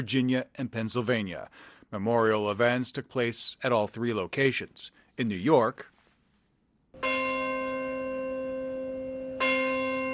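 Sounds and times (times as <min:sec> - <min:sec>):
speech: 0:00.0 - 0:05.9
church bell ringing at St. Paul's Chapel in New York: 0:07.0 - 0:10.1.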